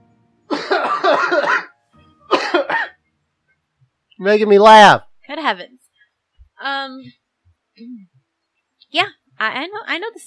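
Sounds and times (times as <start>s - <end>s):
person coughing: 0.5s - 1.7s, 2.3s - 3.0s
speech: 4.2s - 5.8s, 6.6s - 7.2s, 7.8s - 8.1s, 8.9s - 10.2s.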